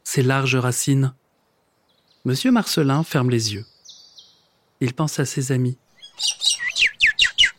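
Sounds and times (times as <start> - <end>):
speech: 0.1 - 1.2, 2.2 - 3.7, 4.8 - 7.0
bird chirping: 1.2 - 4.8, 5.8 - 7.5.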